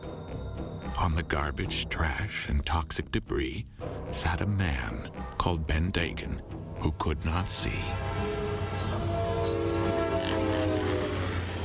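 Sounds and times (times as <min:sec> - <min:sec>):
speech: 0:01.0 - 0:08.1
steam train rumbling along the tracks: 0:07.6 - 0:11.6.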